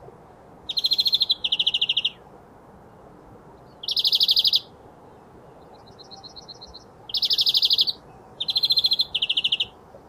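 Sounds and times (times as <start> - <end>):
European greenfinch Chloris chloris song with fast rattling trill: 0.7 - 2.2, 3.7 - 4.7, 5.6 - 9.8
softer quieter greenfinch trill: 0.7 - 2.2, 3.6 - 9.8.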